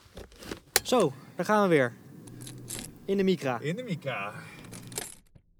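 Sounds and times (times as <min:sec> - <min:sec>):
car engine starting: 0:00.8 - 0:05.0
speech: 0:00.9 - 0:02.0, 0:03.1 - 0:04.5.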